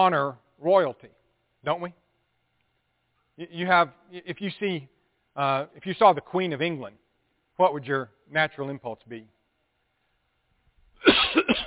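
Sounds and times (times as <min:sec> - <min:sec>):
speech: 0:00.0 - 0:02.0, 0:03.4 - 0:07.0, 0:07.6 - 0:09.4
person coughing from a tickle in the throat: 0:11.0 - 0:11.6.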